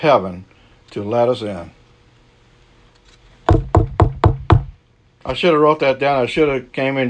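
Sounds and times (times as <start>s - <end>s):
speech: 0.0s - 1.8s, 5.2s - 7.0s
firm knocks on a wooden door: 3.5s - 4.8s.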